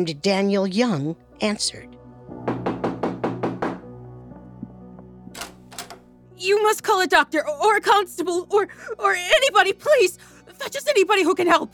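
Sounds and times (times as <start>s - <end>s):
speech: 0.0s - 2.7s, 6.4s - 11.7s
heavy rapid knocks on a wooden door: 2.4s - 3.9s.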